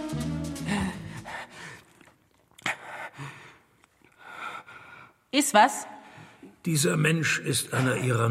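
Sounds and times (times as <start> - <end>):
man breathing heavily: 0.6 - 2.0, 2.6 - 5.3
speech: 5.4 - 5.9, 6.6 - 8.2.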